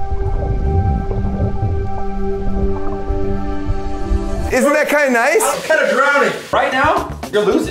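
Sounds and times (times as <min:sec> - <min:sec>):
pool rain shower heard from underwater: 0:00.0 - 0:04.5
speech: 0:04.6 - 0:07.6.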